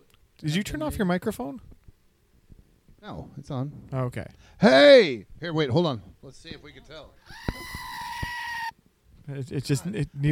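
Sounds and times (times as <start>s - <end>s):
speech: 0.4s - 1.8s, 3.0s - 7.8s, 9.3s - 10.3s
battery-powered screaming goat toy scream with failing batteries: 7.2s - 8.8s.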